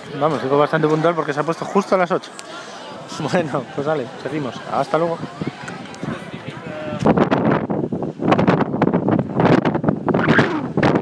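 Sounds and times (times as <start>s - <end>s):
speech: 0.1s - 5.7s
strong wind gusts beside hilltop windmills above Mykonos: 2.8s - 10.9s.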